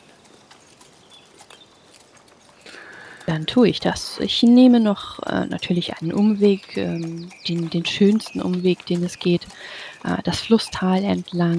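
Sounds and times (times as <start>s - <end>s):
faint hiss: 0.0s - 5.1s
stallion hooves clip-clopping at a walking pace: 0.0s - 11.5s
speech: 3.3s - 11.5s.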